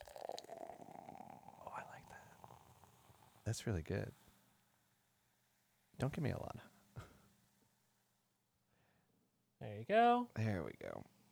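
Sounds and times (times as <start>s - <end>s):
drink pouring into a glass: 0.0s - 3.3s
speech: 3.4s - 4.2s, 6.0s - 6.7s, 9.9s - 11.1s.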